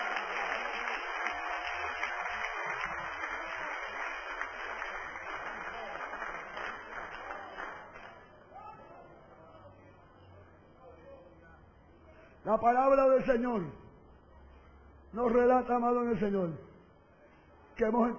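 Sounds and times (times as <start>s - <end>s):
audience applauding: 0.0s - 8.4s
speech: 12.5s - 13.8s, 15.1s - 16.7s, 17.8s - 18.1s.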